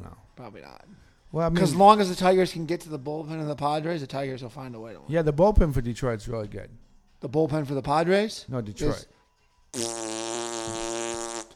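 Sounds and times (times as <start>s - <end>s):
speech: 0.4s - 10.8s
loud buzzy fart: 9.7s - 11.5s.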